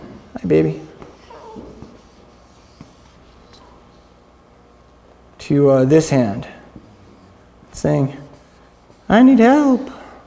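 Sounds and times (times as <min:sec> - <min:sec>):
speech: 0:00.4 - 0:00.9, 0:05.5 - 0:06.6, 0:07.8 - 0:08.2, 0:09.1 - 0:10.0
pen or pencil scratching on paper while drawing a hand: 0:01.8 - 0:03.2, 0:08.3 - 0:09.1.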